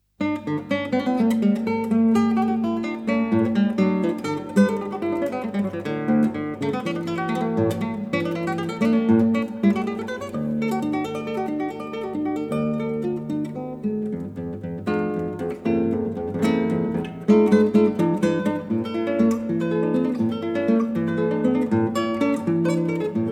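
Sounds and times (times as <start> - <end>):
keyboard sonata in D major arranged for guitar: 0.2 - 23.3.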